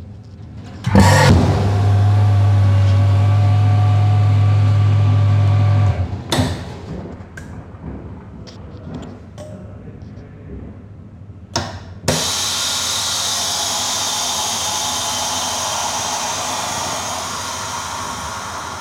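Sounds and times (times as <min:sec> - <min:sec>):
hissing whir: 0:00.8 - 0:06.9, 0:12.1 - 0:18.7
vacuum sealer pump droning: 0:00.9 - 0:06.8, 0:12.1 - 0:18.7.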